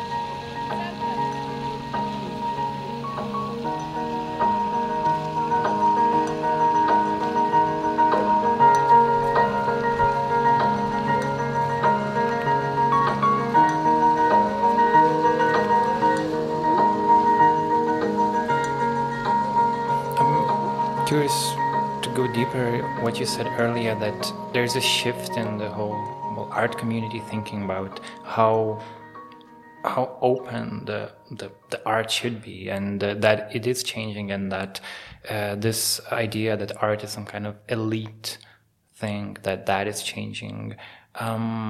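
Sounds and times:
steady instrumental dance music with layered sustained tones: 0.0s - 32.3s
faint ticking or dripping textures: 0.0s - 34.1s
speech: 23.2s - 29.0s, 29.8s - 41.6s.

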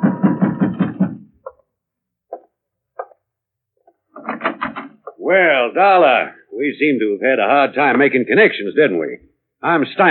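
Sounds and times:
heavy pounding on a room door in a house: 0.0s - 1.4s
speech: 5.3s - 10.0s.

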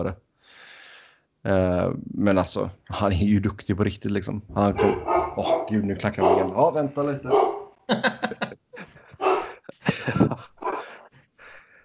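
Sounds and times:
speech: 0.0s - 0.6s, 1.4s - 8.6s
person imitating angry dog barks and snarls: 4.6s - 6.7s, 7.3s - 7.7s, 9.2s - 9.6s, 10.6s - 10.9s
laughter: 4.6s - 7.3s, 7.9s - 11.6s.

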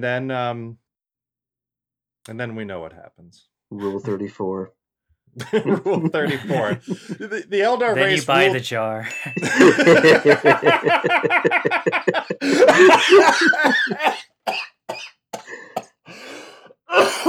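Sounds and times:
speech: 0.0s - 0.8s, 2.3s - 15.6s
laughter: 3.8s - 4.3s, 5.4s - 14.2s
heavy hacking coughing fit: 11.5s - 16.0s, 16.9s - 17.2s
wheezy gasps: 12.3s - 13.6s, 15.4s - 16.9s.

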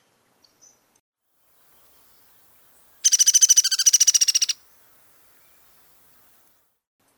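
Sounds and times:
downy woodpecker down-slurred accelerating whinny call: 2.2s - 5.6s.

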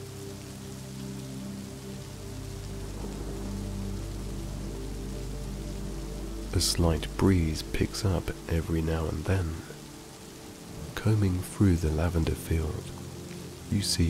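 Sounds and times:
heavy rain drumming on surfaces: 0.0s - 14.0s
low rumbling undertone: 2.0s - 14.0s
speech: 6.6s - 9.7s, 11.0s - 13.0s, 13.7s - 14.0s.

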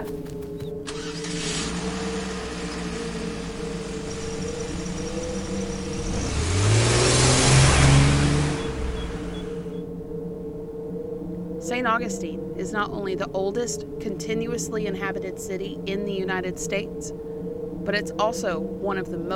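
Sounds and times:
car engine revving and accelerating away: 0.8s - 9.8s
speech: 12.0s - 17.3s, 17.8s - 19.3s.

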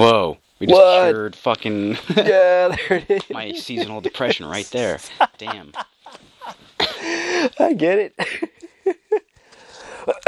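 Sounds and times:
speech: 0.0s - 9.0s, 10.0s - 10.2s
laughter: 1.7s - 9.3s
person coughing: 6.8s - 7.3s
raspy breathing: 6.9s - 7.6s, 9.3s - 10.2s.

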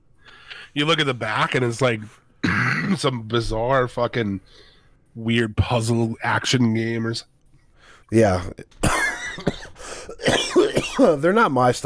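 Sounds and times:
speech: 0.7s - 7.3s, 8.1s - 8.8s, 11.0s - 11.8s
harsh coughs: 2.4s - 3.0s, 8.8s - 11.2s.

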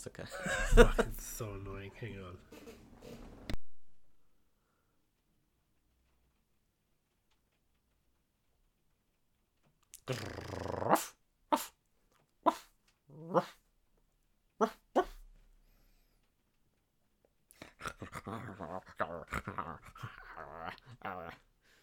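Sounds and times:
speech: 0.0s - 3.3s, 10.1s - 11.7s
laughter: 0.2s - 1.7s
dog growling and whimpering: 10.0s - 11.1s, 13.1s - 13.6s, 17.6s - 21.4s.

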